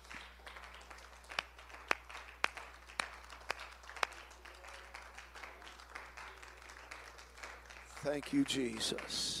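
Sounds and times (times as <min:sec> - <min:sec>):
audience clapping hands: 0:00.0 - 0:09.3
speech: 0:08.0 - 0:09.3.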